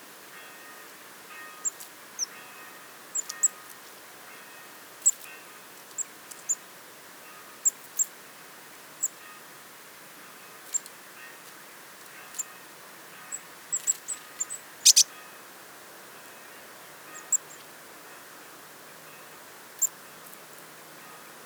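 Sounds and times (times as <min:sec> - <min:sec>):
faint steady hiss: 0:00.0 - 0:21.4
Eurasian blue tit Cyanistes caeruleus uttering very high chip notes: 0:13.8 - 0:15.0.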